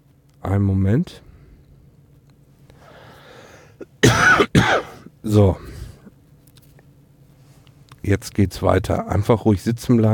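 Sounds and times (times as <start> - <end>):
speech: 0.4 - 1.3, 5.2 - 5.7, 8.0 - 10.1
person coughing hard: 3.8 - 5.7.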